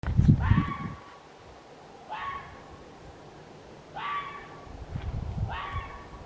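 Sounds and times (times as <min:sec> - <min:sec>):
red fox yelping: 0:00.4 - 0:01.1, 0:02.0 - 0:02.7, 0:03.9 - 0:04.7, 0:05.4 - 0:06.2.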